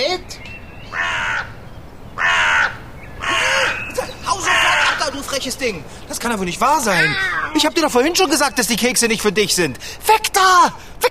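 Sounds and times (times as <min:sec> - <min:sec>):
crow cawing while at cookies: 0:00.8 - 0:06.1, 0:06.7 - 0:07.6
speech: 0:05.4 - 0:11.0.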